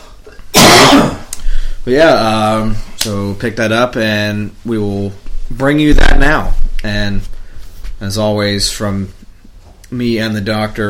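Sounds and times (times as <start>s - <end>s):
harsh raspy cough or throat-clearing: 0.3s - 1.3s
speech: 1.8s - 7.3s, 8.0s - 9.2s, 9.9s - 10.8s.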